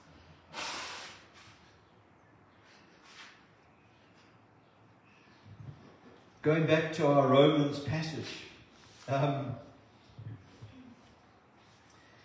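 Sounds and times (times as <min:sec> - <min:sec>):
nose blowing: 0:00.5 - 0:01.5
speech: 0:06.4 - 0:08.5, 0:09.1 - 0:09.7.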